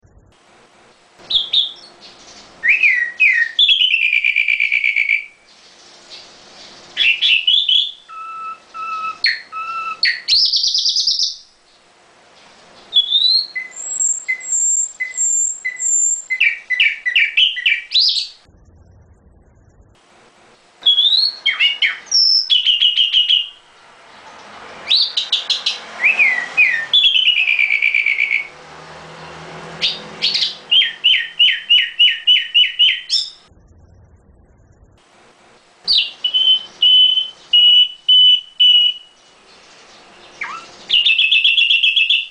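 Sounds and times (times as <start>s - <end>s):
nightingale chirping in variations: 1.3s - 11.9s, 12.7s - 18.5s, 20.8s - 23.6s, 24.9s - 28.5s, 29.8s - 33.5s, 35.9s - 42.2s.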